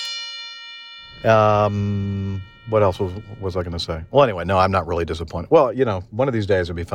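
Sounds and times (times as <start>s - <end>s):
bright bell ding: 0.0s - 4.8s
louder ringing tone with sustained overtones: 0.0s - 5.2s
speech: 1.1s - 6.9s.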